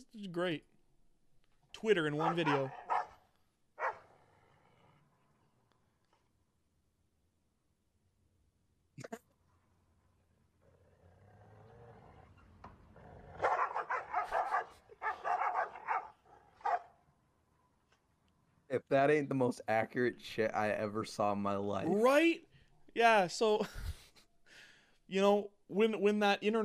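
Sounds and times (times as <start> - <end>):
speech: 0.1 - 0.7, 1.7 - 2.8, 18.7 - 24.0, 25.1 - 26.6
dogs barking: 2.0 - 3.2, 3.8 - 4.1, 13.3 - 17.0.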